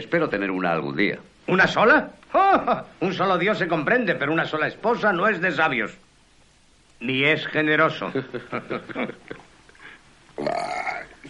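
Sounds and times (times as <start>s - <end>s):
short bursts of speech: 0.0s - 6.0s, 7.0s - 8.3s
laughter: 8.1s - 9.5s
man burping after a meal: 10.4s - 11.2s.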